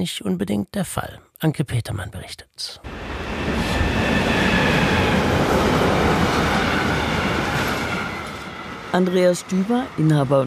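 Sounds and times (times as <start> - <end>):
speech: 0.0 - 4.2, 8.9 - 10.4
train passing on a Rhine valley railway line: 2.8 - 10.4.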